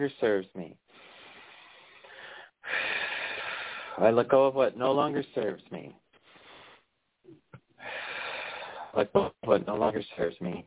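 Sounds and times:
speech: 0.0s - 0.8s, 4.0s - 6.0s, 9.0s - 10.6s
breathy exhale: 0.9s - 4.0s, 7.8s - 8.9s.

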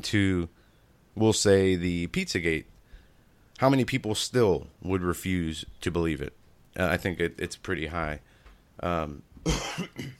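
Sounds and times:
speech: 0.0s - 0.6s, 1.2s - 2.7s, 3.6s - 10.1s
person coughing: 9.4s - 10.1s.

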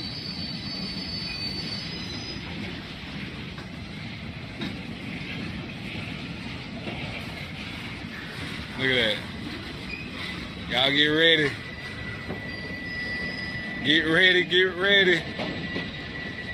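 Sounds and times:
high metallic train wheel squeals: 0.0s - 3.0s, 9.8s - 16.5s
train rumbling past: 0.0s - 16.5s
speech: 8.8s - 9.3s, 10.7s - 11.6s, 13.8s - 15.7s.

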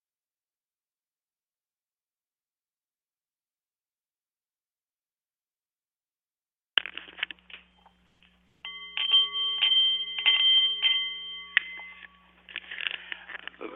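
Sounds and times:
soft clattering and rustling handling noises: 6.8s - 13.6s
Nepalese meditation singing bowl chiming: 8.6s - 13.4s.

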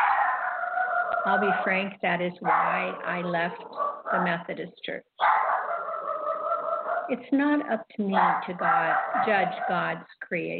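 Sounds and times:
small female dog barking and howling: 0.0s - 1.7s, 2.4s - 4.2s, 5.2s - 7.1s, 8.2s - 9.8s
speech: 1.2s - 5.4s, 7.1s - 10.5s.

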